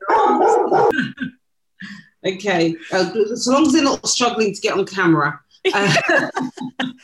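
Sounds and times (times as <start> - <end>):
dogs barking and yipping: 0.0 - 1.0
speech: 2.2 - 7.0
laughter: 5.7 - 7.0.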